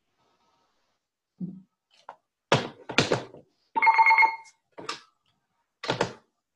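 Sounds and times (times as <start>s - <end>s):
telephone ringing with a short bright electronic trill: 3.8s - 4.5s.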